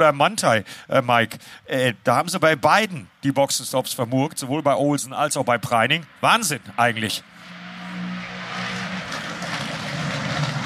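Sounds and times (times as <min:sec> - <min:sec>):
speech: 0:00.0 - 0:07.5
GT3 race cars racing past: 0:05.8 - 0:10.6.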